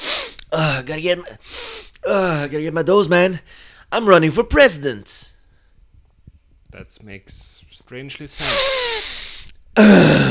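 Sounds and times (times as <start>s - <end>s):
loud nasal sniffing: 0.0s - 0.5s, 1.4s - 2.0s, 8.4s - 9.6s
speech: 0.6s - 5.3s, 6.7s - 9.2s, 9.8s - 10.2s
brief voiced groan-like sound: 9.8s - 10.2s.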